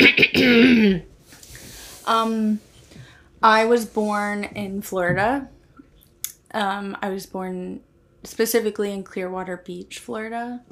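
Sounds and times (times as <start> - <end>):
speech: 0.0 - 1.1, 2.1 - 2.7, 3.4 - 5.6, 6.5 - 10.7
throat clearing: 0.0 - 1.1.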